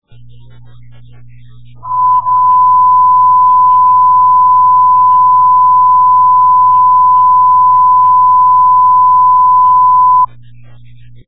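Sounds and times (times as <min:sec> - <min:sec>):
loud tone on a test exchange: 0:01.8 - 0:10.3.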